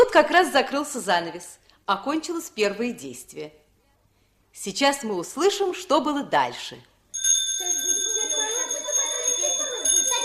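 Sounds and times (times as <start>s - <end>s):
speech: 0.1s - 3.6s, 4.5s - 6.9s
theatre bell ringing before the curtain rises on a children's play: 7.2s - 10.2s.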